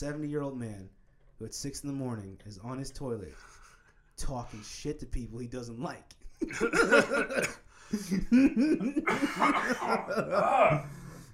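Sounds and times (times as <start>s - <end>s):
speech: 0.0s - 3.6s, 4.2s - 11.0s
person laughing: 6.4s - 11.0s
harsh coughing fit during laughter: 6.4s - 11.3s.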